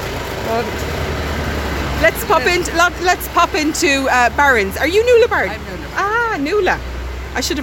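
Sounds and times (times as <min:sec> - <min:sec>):
tractors rumbling up a street in a small town: 0:00.0 - 0:07.6
traffic noise on a small town street: 0:00.0 - 0:07.6
speech: 0:00.5 - 0:01.1, 0:02.0 - 0:07.6.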